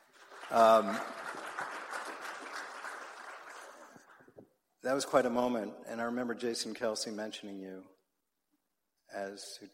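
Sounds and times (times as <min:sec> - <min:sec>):
crowd applause: 0:00.0 - 0:04.4
speech: 0:00.5 - 0:01.2, 0:04.8 - 0:08.0, 0:09.1 - 0:09.7.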